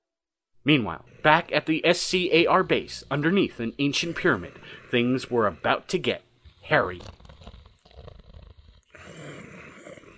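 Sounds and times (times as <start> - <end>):
speech: 0.6 - 7.2
large beast snoring: 1.1 - 10.1.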